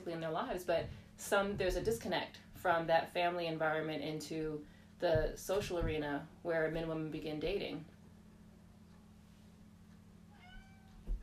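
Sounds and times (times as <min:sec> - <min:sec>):
speech: 0:00.0 - 0:07.9
soft low thump: 0:00.7 - 0:02.2, 0:05.0 - 0:06.2, 0:11.0 - 0:11.2
cat meowing at the door: 0:10.3 - 0:11.2.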